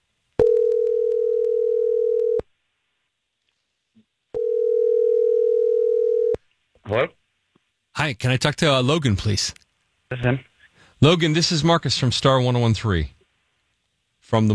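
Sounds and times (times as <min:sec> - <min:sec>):
phone line ringing on the caller's end: 0:00.4 - 0:02.4, 0:04.4 - 0:06.4
speech: 0:06.9 - 0:07.2, 0:08.0 - 0:13.2, 0:14.3 - 0:14.5.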